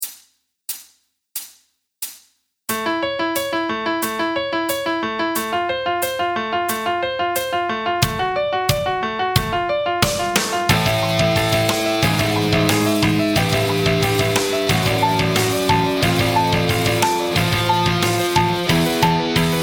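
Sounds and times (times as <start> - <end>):
backing track music: 2.7 - 19.6
guitar arpeggio exercise: 10.7 - 19.6.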